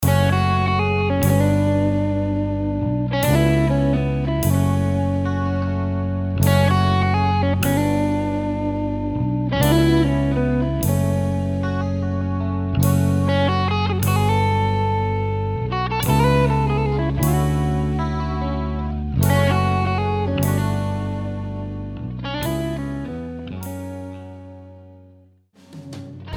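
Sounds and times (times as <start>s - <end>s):
electric guitar playing progressive fusion: 0.0s - 25.2s, 25.8s - 26.3s.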